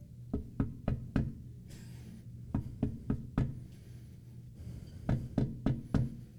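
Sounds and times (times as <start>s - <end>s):
gentle persistent knocking on a door: 0.3s - 1.4s, 2.6s - 3.6s, 5.1s - 6.1s.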